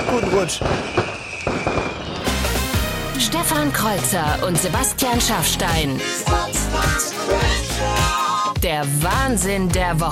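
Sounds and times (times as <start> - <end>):
sharp firework bangs: 0.0 - 3.6
fireworks crackling and popping: 0.0 - 5.1
speech: 0.1 - 1.1, 3.2 - 10.1.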